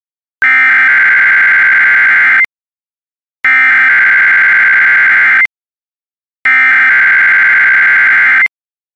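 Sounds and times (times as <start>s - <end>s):
NOAA Weather Radio warning alarm tone sounded as a test: 0.4s - 2.5s, 3.5s - 5.5s, 6.5s - 8.5s.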